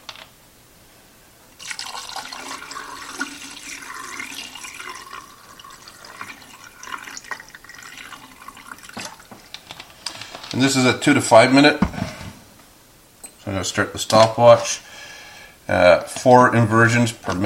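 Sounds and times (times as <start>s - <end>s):
fixer liquid poured into a film developing tank: 1.6s - 9.6s
speech: 10.6s - 12.1s, 13.6s - 14.9s, 15.7s - 17.4s.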